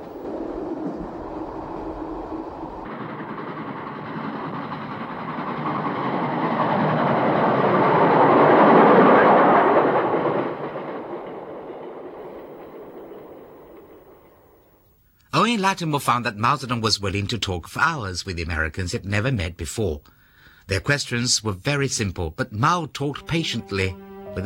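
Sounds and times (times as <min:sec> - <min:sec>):
train rumbling on rails: 0:00.0 - 0:14.8
speech: 0:15.6 - 0:24.4.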